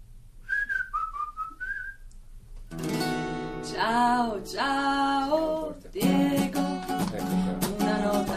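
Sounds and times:
person whistling a tune: 0.5s - 2.1s
speech: 3.8s - 8.2s.

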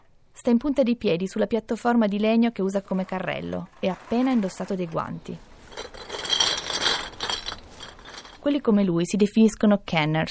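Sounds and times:
speech: 0.4s - 5.5s, 8.4s - 10.2s
beverage cans clinking, rattling and scraping in a trash bin: 5.5s - 8.5s.

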